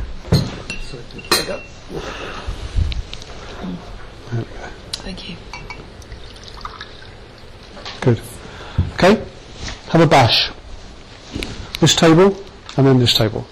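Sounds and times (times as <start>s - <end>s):
light clink of glassware: 0.3s - 1.8s, 5.5s - 7.5s
speech: 0.3s - 2.8s, 3.6s - 5.7s, 7.8s - 8.3s, 9.0s - 10.6s, 11.3s - 13.5s
water pouring into a glass: 5.6s - 7.7s.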